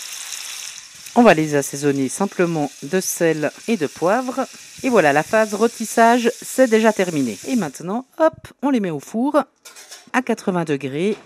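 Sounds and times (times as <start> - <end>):
venison fillets sizzling in a hot frying pan: 0.0 - 8.0
speech: 1.2 - 11.2.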